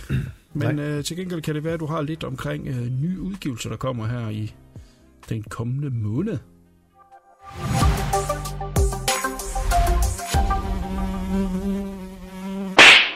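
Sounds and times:
speech: 0:00.1 - 0:04.6, 0:05.3 - 0:06.5, 0:07.5 - 0:08.6
fly buzzing: 0:09.2 - 0:13.1.

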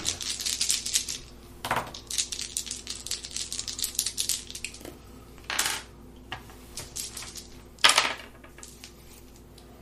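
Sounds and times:
dice rattling and clattering across a hard surface: 0:00.0 - 0:04.8, 0:06.8 - 0:08.8.

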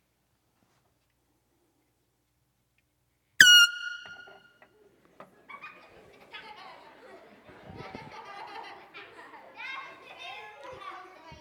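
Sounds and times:
air horn blast in a quiet room: 0:03.4 - 0:04.5
laughter: 0:04.0 - 0:11.4.

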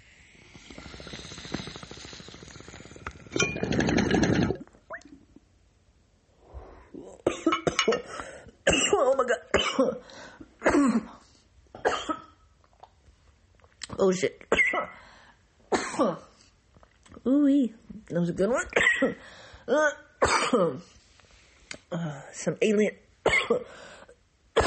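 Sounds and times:
cannabis water pipe bubbling and gurgling during a hit: 0:00.0 - 0:05.4
person coughing harshly: 0:07.2 - 0:10.0, 0:10.6 - 0:11.2, 0:11.8 - 0:12.4, 0:15.7 - 0:16.3, 0:18.8 - 0:19.2, 0:20.2 - 0:20.8, 0:23.3 - 0:23.7
speech: 0:14.1 - 0:14.3, 0:17.5 - 0:21.0, 0:21.9 - 0:23.9.

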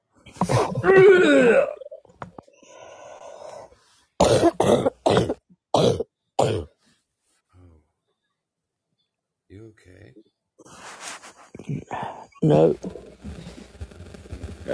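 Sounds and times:
speech: 0:00.8 - 0:01.8, 0:12.5 - 0:12.9
wheezing breath: 0:02.5 - 0:03.9
person coughing: 0:04.2 - 0:06.7.

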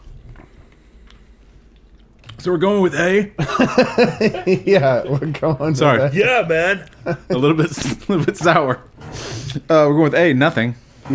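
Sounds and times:
low steady hum: 0:00.0 - 0:11.1
chewing and crunching on a bubble gum lollipop: 0:01.0 - 0:02.4
speech: 0:02.4 - 0:11.1
laughter: 0:03.4 - 0:08.9.

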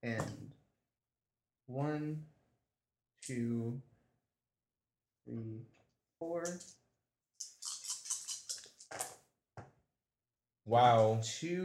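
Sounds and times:
speech: 0:00.0 - 0:00.4, 0:01.7 - 0:02.3, 0:03.2 - 0:03.9, 0:05.3 - 0:06.8, 0:10.7 - 0:11.6
two dice rolled during a tabletop role-playing game damage roll: 0:06.4 - 0:06.7, 0:07.4 - 0:09.2.

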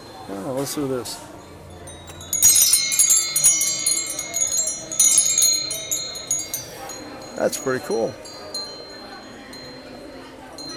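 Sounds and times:
speech: 0:00.3 - 0:01.3, 0:07.4 - 0:08.2
wind chime ringing with bright metallic tones: 0:01.9 - 0:09.7.

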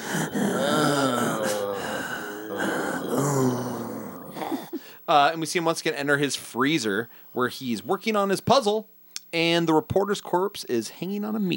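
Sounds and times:
heavy labored breathing with gasps and low groans from a film clip: 0:00.0 - 0:05.0
speech: 0:05.1 - 0:11.5.

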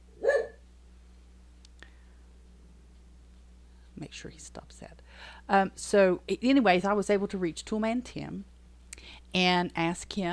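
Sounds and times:
quiet hum: 0:00.0 - 0:10.3
single short dog bark: 0:00.2 - 0:00.6
speech: 0:04.0 - 0:08.5, 0:09.1 - 0:10.3.

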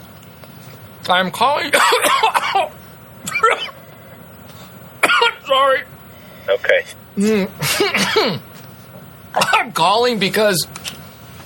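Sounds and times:
speech: 0:01.0 - 0:03.7, 0:05.5 - 0:08.5, 0:09.4 - 0:10.9
harsh coughing after chocolate powder went down the throat: 0:01.7 - 0:04.0, 0:05.0 - 0:05.8, 0:07.2 - 0:08.5, 0:09.3 - 0:09.8.

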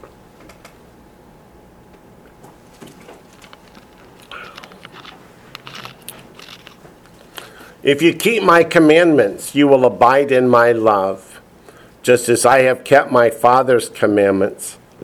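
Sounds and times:
low steady room hum: 0:00.0 - 0:15.0
pages of a book being turned: 0:02.5 - 0:07.6
speech: 0:07.9 - 0:11.3, 0:12.0 - 0:15.0.

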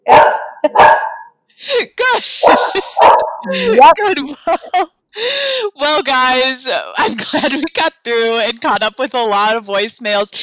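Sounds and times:
pet dogs barking: 0:00.0 - 0:01.4, 0:02.4 - 0:03.5
speech: 0:00.6 - 0:01.0, 0:01.6 - 0:10.4.

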